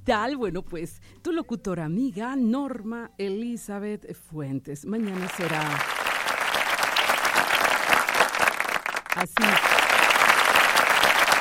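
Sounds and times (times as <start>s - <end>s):
speech: 0.0s - 6.0s, 9.2s - 9.7s
crowd applause: 5.0s - 11.3s.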